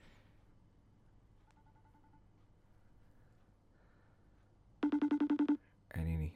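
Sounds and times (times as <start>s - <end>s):
phone ringback tone electronic beeps: 4.8s - 5.6s.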